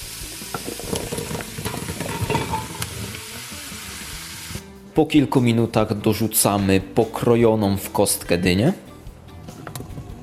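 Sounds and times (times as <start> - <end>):
onion and garlic sizzling in a pot: 0.0 - 4.6
speech: 5.0 - 8.8.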